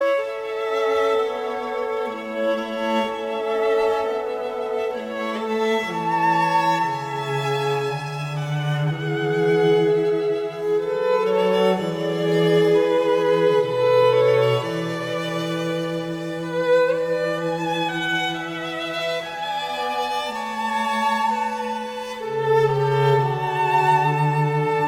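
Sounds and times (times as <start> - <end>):
violin lullaby: 0.0 - 24.8.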